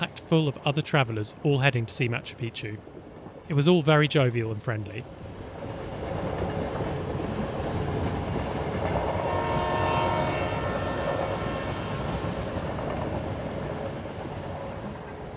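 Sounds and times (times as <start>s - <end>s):
old worn passenger train rumbling along the rails: 0.0s - 15.3s
speech: 0.2s - 5.2s
tonal horn-like swell: 7.7s - 15.3s.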